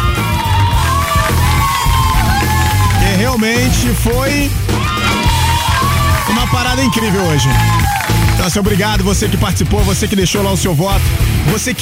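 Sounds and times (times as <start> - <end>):
loud crowd cheering and whooping with yells and shouts: 0.0 - 8.7
speech: 3.4 - 4.8, 6.3 - 11.8.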